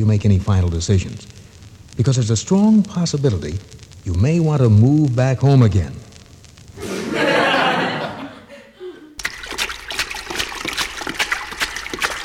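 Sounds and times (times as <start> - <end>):
speech: 0.0 - 1.4, 2.0 - 6.0
laughter: 6.8 - 9.2
water sloshing: 9.2 - 12.2.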